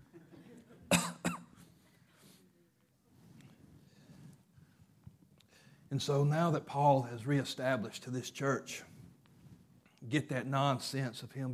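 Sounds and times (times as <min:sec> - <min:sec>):
person coughing to clear something stuck in the throat: 0:00.9 - 0:01.6
faint breathing: 0:03.8 - 0:05.9
speech: 0:05.9 - 0:08.9, 0:10.1 - 0:11.5.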